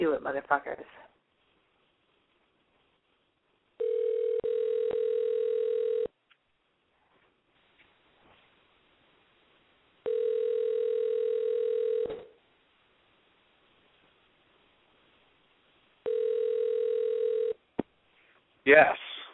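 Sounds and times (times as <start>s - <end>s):
speech: 0.2s - 1.1s, 18.7s - 19.1s
telephone dial tone while placing a call: 3.8s - 6.1s, 10.0s - 12.3s, 16.0s - 17.6s.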